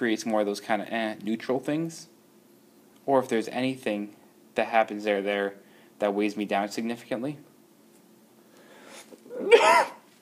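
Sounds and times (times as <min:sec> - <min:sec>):
speech: 0:00.0 - 0:02.2, 0:03.1 - 0:07.5
sneeze with breathy build-up: 0:09.3 - 0:10.1.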